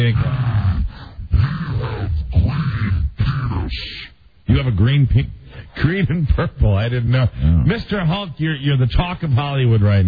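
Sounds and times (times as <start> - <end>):
speech: 0.0 - 0.4, 4.5 - 10.0
person voicing a deep gravelly monster growl: 0.0 - 3.8.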